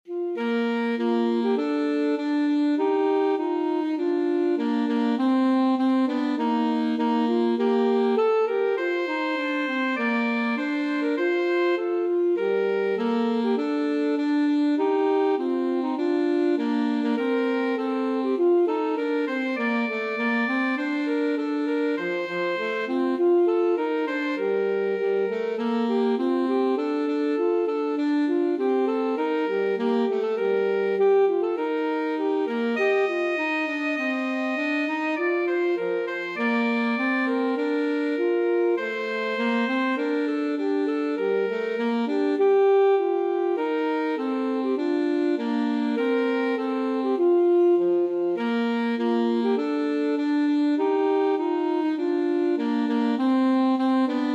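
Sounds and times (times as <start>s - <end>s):
alto saxophone playing an anthem: 0.0s - 54.3s.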